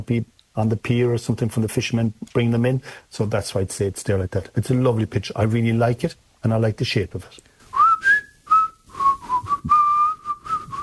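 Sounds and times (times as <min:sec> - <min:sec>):
speech: 0:00.0 - 0:07.5
person whistling a tune: 0:07.7 - 0:10.8.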